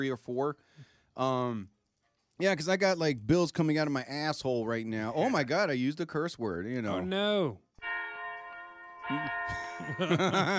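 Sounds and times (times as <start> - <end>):
speech: 0.0 - 1.8, 2.4 - 7.6, 9.1 - 10.5
laughter: 5.2 - 5.5, 9.5 - 10.5
church bell sound effect ringing: 7.8 - 10.5.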